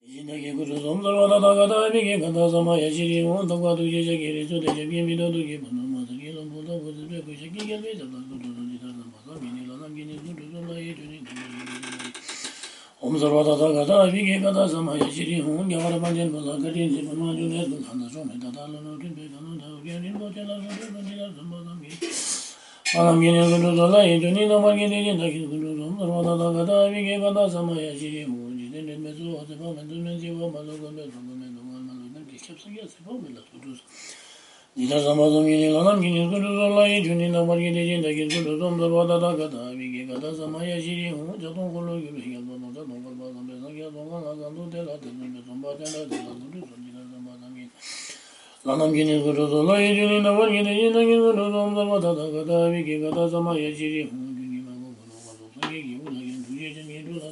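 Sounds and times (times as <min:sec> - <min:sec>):
Buddhist prayer chanting: 0:00.0 - 0:12.1, 0:13.0 - 0:22.2, 0:22.9 - 0:33.8, 0:34.8 - 0:47.7, 0:48.6 - 0:57.3.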